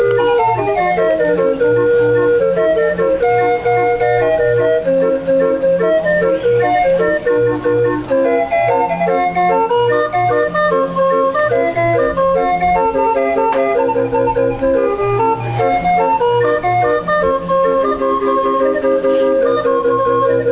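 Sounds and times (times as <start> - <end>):
organ music: 0.0 - 20.4.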